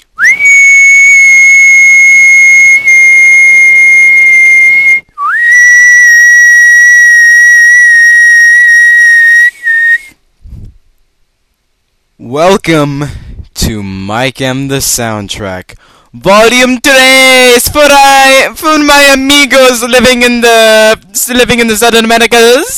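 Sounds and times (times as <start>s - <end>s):
long loud whistle blasts: 0.2s - 10.2s
speech: 12.3s - 22.7s.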